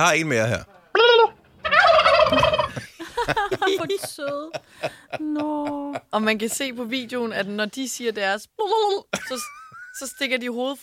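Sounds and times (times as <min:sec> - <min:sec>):
speech: 0:00.0 - 0:00.7, 0:03.3 - 0:10.8
turkeys gobbling: 0:00.9 - 0:02.8
laughter: 0:02.3 - 0:06.1.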